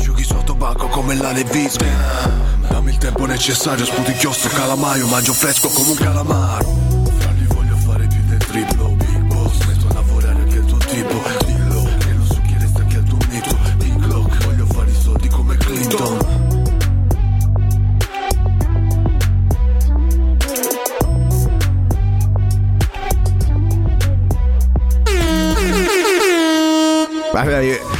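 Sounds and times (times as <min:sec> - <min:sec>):
rap beat with deep booming bass: 0:00.0 - 0:26.2
speech: 0:01.0 - 0:06.8, 0:08.5 - 0:08.9
blaring horn-like stabs: 0:03.4 - 0:07.6, 0:25.0 - 0:27.9
bright rising synth sweep: 0:03.9 - 0:07.1.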